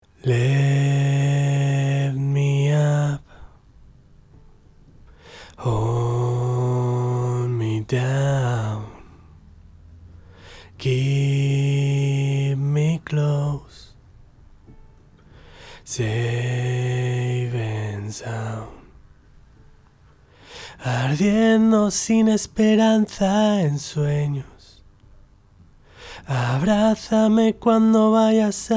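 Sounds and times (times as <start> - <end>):
lead vocal singing: 0.1 - 3.6, 5.4 - 9.4, 10.5 - 14.0, 15.7 - 19.0, 20.6 - 24.8, 26.0 - 28.7.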